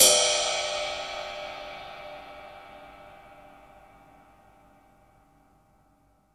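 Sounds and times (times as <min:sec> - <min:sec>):
roomy ride cymbal in D key: 0:00.0 - 0:04.2.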